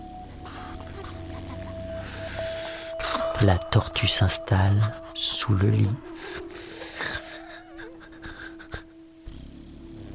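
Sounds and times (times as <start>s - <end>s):
soft low rumbling snore: 0.0s - 3.4s, 6.1s - 10.1s
speech: 3.4s - 6.5s.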